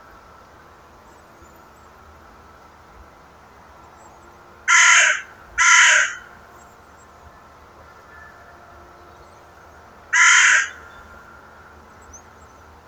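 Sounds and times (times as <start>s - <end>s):
Carrion crow (Corvus corone) giving harsh hoarse caws: 4.7s - 6.4s, 10.1s - 11.4s.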